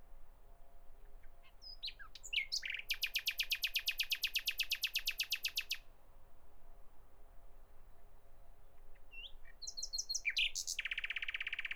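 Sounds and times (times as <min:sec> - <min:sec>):
Common nightingale song with sharp notes and rapid clicking volley: 0:01.7 - 0:05.8, 0:09.1 - 0:11.7.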